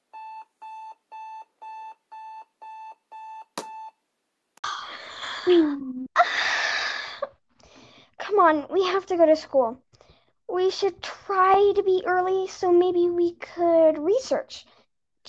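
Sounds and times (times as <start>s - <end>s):
electronic alarm clock beeping: 0.1s - 3.9s
speech: 5.4s - 6.0s, 8.4s - 9.8s, 10.5s - 15.2s.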